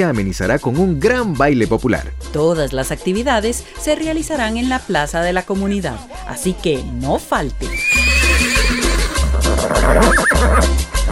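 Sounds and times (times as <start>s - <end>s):
speech: 0.0s - 8.2s, 9.6s - 11.1s
horse neighing: 7.6s - 11.1s.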